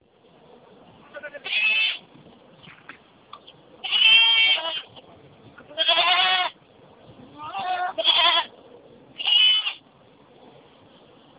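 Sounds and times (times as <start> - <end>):
young goats bleating: 1.1 - 2.0, 3.8 - 4.9, 5.7 - 6.6, 7.4 - 8.5, 9.2 - 9.8.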